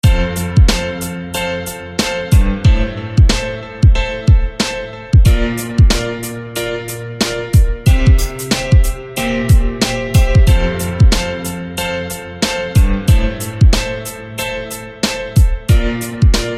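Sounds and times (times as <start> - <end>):
piano: 0.0 - 16.5.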